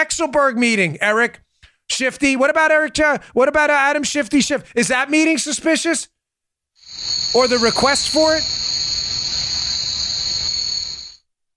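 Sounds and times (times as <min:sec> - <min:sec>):
speech: 0:00.0 - 0:06.2, 0:06.9 - 0:08.6
cricket chirp sound effect: 0:06.8 - 0:11.2.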